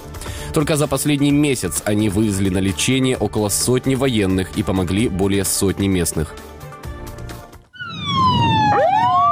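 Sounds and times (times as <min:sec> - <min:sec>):
speech: 0:00.5 - 0:06.5
ambulance siren wailing: 0:07.7 - 0:09.3.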